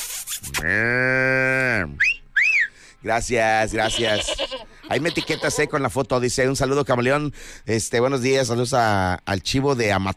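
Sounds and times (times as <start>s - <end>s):
speech: 0.6s - 2.1s, 3.0s - 10.1s
high chirping whistles: 2.0s - 2.8s
calf mooing: 3.8s - 5.7s.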